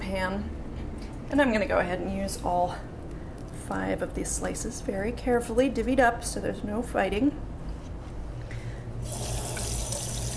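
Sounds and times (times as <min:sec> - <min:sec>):
speech: 0:00.1 - 0:00.6, 0:01.3 - 0:03.0, 0:03.7 - 0:07.4
running tap water at a sink washing bacon grease off fingers: 0:09.0 - 0:10.3.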